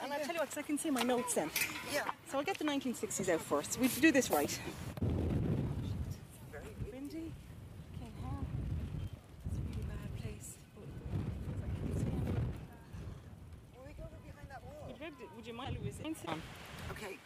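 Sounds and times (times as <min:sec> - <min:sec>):
speech: 0:00.4 - 0:05.0
gusts of wind buffeting an outdoor microphone: 0:03.4 - 0:17.1.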